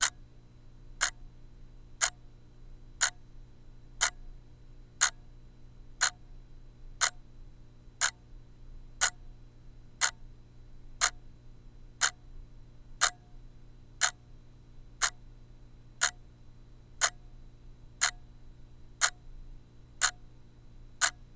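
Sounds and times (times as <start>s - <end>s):
mini alarm clock ticking: 1.0s - 1.2s, 2.0s - 2.2s, 3.0s - 3.2s, 4.0s - 4.2s, 5.0s - 5.2s, 6.0s - 6.2s, 7.0s - 7.2s, 8.0s - 8.2s, 9.0s - 9.2s, 10.0s - 10.2s, 11.0s - 11.2s, 12.0s - 12.2s, 13.0s - 13.3s, 14.0s - 14.2s, 15.0s - 15.2s, 16.0s - 16.2s, 17.0s - 17.2s, 18.0s - 18.3s, 19.0s - 19.2s, 20.0s - 20.2s, 21.0s - 21.2s.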